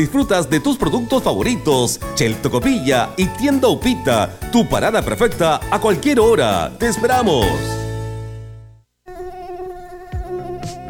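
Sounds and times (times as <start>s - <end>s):
speech: 0.0s - 7.8s
Aedes aegypti mosquito buzzing: 9.0s - 10.8s.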